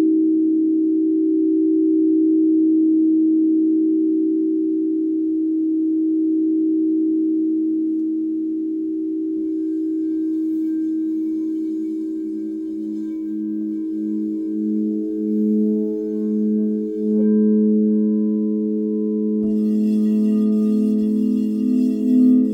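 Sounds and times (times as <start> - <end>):
second crystal singing bowl with slow pulsing beat: 0.9 - 22.5
crystal singing bowls humming: 8.6 - 22.5
soft bright shimmering touches: 9.3 - 22.5.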